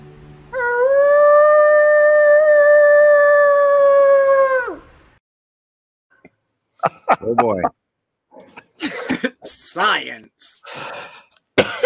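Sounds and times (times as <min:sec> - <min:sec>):
person imitating a wolf howl: 0:00.5 - 0:04.9
laughter: 0:06.8 - 0:07.7, 0:08.5 - 0:09.4
speech: 0:07.3 - 0:07.8, 0:09.8 - 0:11.0.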